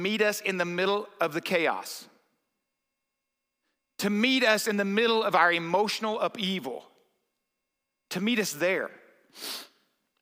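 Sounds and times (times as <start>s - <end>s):
speech: 0.0s - 2.1s, 4.0s - 6.9s, 8.1s - 9.7s
person sniffling: 9.3s - 10.0s.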